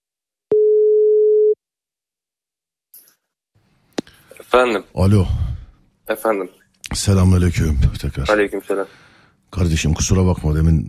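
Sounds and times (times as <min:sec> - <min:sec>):
phone ringing tone as a steady clear electronic beep: 0:00.5 - 0:01.6
speech: 0:04.5 - 0:05.4, 0:06.1 - 0:10.8.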